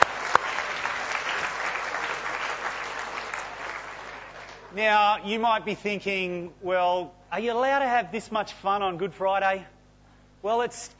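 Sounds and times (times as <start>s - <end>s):
audience clapping: 0.0s - 5.0s
speech: 4.7s - 9.7s, 10.4s - 10.9s.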